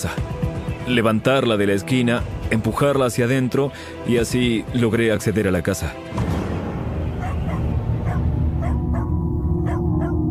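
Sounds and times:
speech: 0:00.0 - 0:00.2, 0:00.9 - 0:06.3
dog barking in short sharp bursts: 0:07.1 - 0:10.2.

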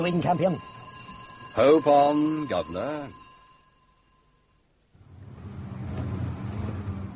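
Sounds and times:
speech: 0:00.0 - 0:00.8, 0:01.6 - 0:03.2
car engine starting and revving as the car pulls away: 0:05.0 - 0:07.1.

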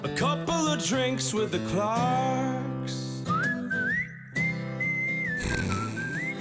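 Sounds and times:
speech: 0:00.2 - 0:03.0
loud human whistling a wavering melody: 0:03.2 - 0:06.3.

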